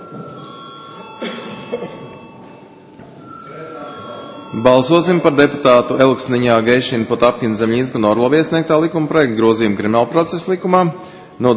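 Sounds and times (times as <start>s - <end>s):
electric parliament voting call bell ringing: 0.0s - 6.7s
speech: 1.7s - 2.2s, 4.5s - 11.5s.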